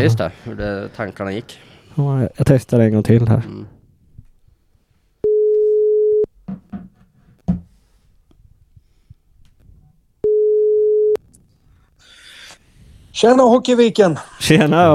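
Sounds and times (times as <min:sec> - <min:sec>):
speech: 0:00.0 - 0:03.8, 0:13.2 - 0:14.9
phone ringback tone while placing a call: 0:05.2 - 0:06.3, 0:10.2 - 0:11.2.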